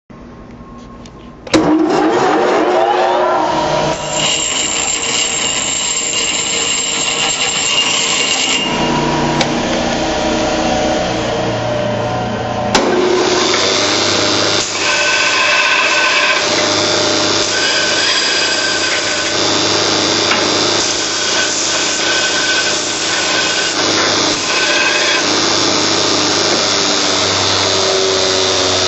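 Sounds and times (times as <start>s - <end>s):
stationary grinders: 1.6s - 11.8s, 12.7s - 28.8s.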